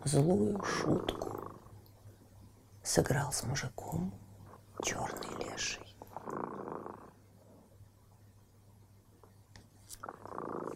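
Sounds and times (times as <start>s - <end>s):
speech: 0.1s - 1.2s, 2.8s - 4.2s, 4.8s - 5.8s
cat purring: 0.1s - 1.9s, 4.8s - 7.7s, 9.9s - 10.7s.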